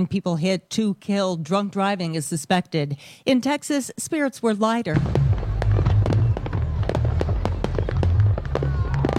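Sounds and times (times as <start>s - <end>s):
speech: 0.0s - 5.3s
fireworks bursting over an open city: 4.9s - 9.1s.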